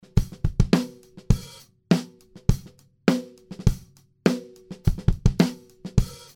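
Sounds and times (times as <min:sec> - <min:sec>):
drums: 0:00.0 - 0:06.3.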